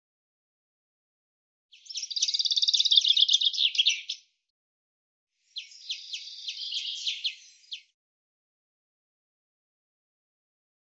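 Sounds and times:
common chaffinch song: 1.7s - 4.4s, 5.4s - 8.0s.

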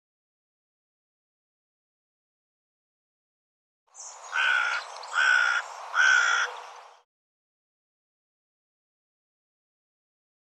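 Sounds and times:
bird calling harsh raspy caw-like notes: 4.3s - 6.6s.

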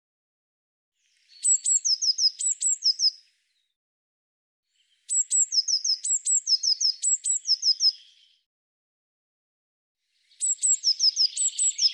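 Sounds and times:
Eurasian blue tit calling: 1.3s - 3.2s, 5.1s - 8.2s, 10.4s - 11.9s.

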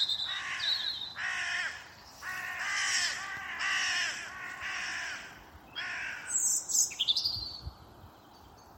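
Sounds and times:
bird cawing: 0.1s - 6.6s.

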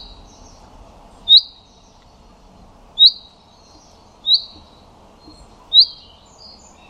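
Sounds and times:
common chaffinch calling a bright pink note: 1.3s - 1.8s, 3.0s - 3.4s, 4.2s - 6.2s.

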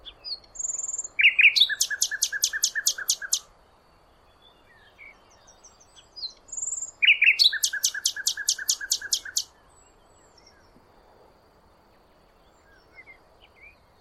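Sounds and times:
bird clicking chirps: 1.6s - 3.4s, 7.5s - 9.4s.

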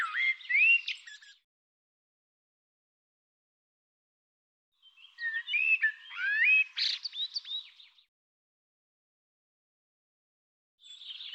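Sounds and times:
bird calls: 0.0s - 1.4s, 4.8s - 8.1s, 10.8s - 11.3s.

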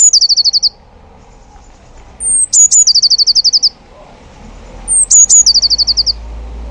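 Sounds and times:
Eurasian blue tit trilling: 0.0s - 0.8s, 1.7s - 3.8s, 4.9s - 6.2s.

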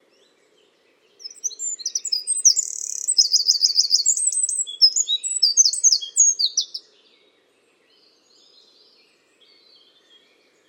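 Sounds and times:
bird chirps and trills: 0.9s - 6.8s.

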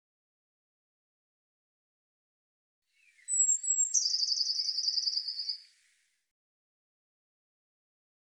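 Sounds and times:
Eurasian blue tit thin high falling whistle: 3.0s - 5.9s
Eurasian blue tit fast buzzy trill: 3.1s - 5.7s.

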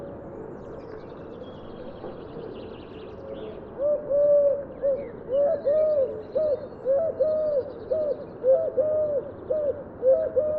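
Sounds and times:
bird cooing: 3.8s - 10.5s.

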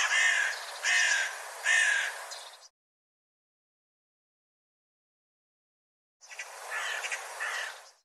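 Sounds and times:
bird harsh raspy caws: 0.0s - 2.5s, 6.3s - 8.0s.

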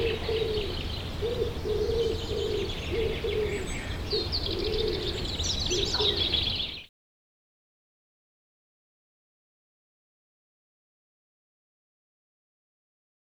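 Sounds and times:
common wood pigeon giving low muffled coos: 0.0s - 6.8s
other birds giving busy high chirping: 0.0s - 6.9s.

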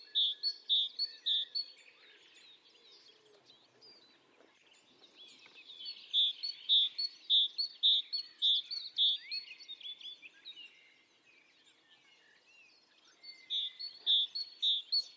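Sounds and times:
quiet bird twittering: 0.0s - 15.1s.

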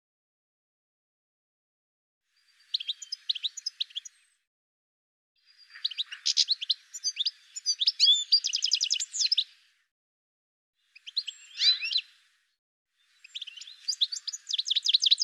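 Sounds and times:
bird chirps and trills: 2.4s - 4.3s, 5.4s - 9.6s, 10.8s - 12.2s, 13.0s - 15.2s.

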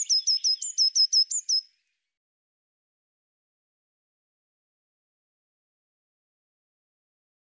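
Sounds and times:
Eurasian blue tit calling: 0.0s - 1.7s.

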